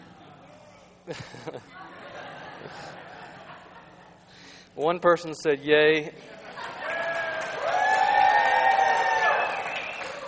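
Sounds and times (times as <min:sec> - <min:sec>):
speech: 0:01.1 - 0:02.0, 0:02.6 - 0:03.2, 0:04.8 - 0:06.4
laughter: 0:01.1 - 0:04.3, 0:06.1 - 0:07.5
large audience booing: 0:06.6 - 0:10.2.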